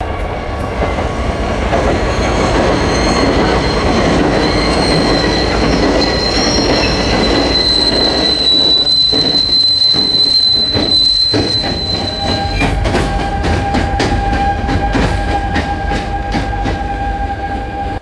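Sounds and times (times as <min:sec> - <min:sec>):
train slowing down: 0:00.0 - 0:17.9
train brake squeal: 0:01.8 - 0:12.8.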